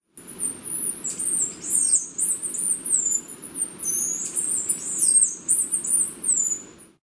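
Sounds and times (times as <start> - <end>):
Buarremon brunneinuchus calling: 0.2 - 7.0.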